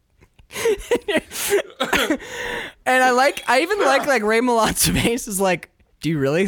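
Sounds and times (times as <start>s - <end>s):
person gasping: 0.5s - 2.9s
harsh raspy hacking coughs: 0.6s - 5.2s
speech: 3.3s - 6.4s.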